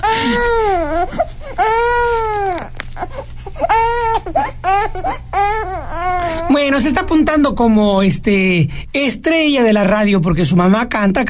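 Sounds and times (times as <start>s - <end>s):
baby crying loudly with wails and gasps: 0.0s - 7.0s
speech: 6.8s - 11.2s.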